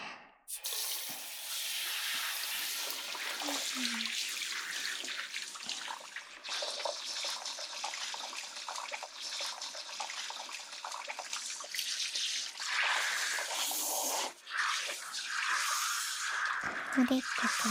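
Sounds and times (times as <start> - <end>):
hot water running from a shower rinsing shampoo out of hair: 0.5 - 17.6
speech: 17.0 - 17.6.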